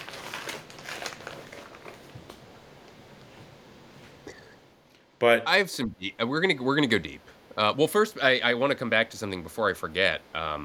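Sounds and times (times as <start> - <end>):
easy-to-open plastic bag crinkling as it is pulled open: 0.0 - 2.8
speech: 5.2 - 10.6.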